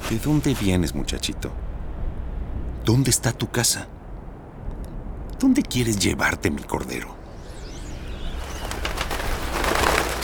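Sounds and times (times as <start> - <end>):
speech: 0.1 - 1.7, 2.9 - 4.0, 5.4 - 7.2
scattered bird chirps: 6.7 - 10.0.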